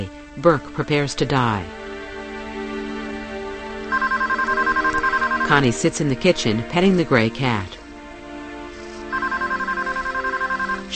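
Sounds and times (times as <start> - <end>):
speech: 0.0 - 1.8, 5.5 - 7.8
telephone ringing in a kitchen with a bright electronic warble: 3.9 - 5.7, 9.1 - 10.9.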